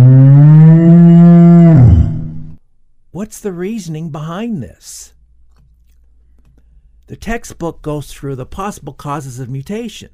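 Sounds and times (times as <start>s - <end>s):
cow mooing: 0.0s - 2.6s
speech: 3.3s - 5.2s, 7.1s - 10.1s.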